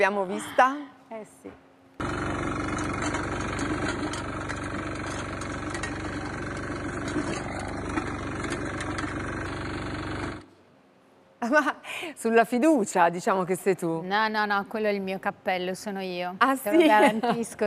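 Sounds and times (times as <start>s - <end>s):
speech: 0.0s - 1.7s, 11.4s - 17.6s
small rotary tiller engine running with a rattling drone: 2.0s - 10.5s.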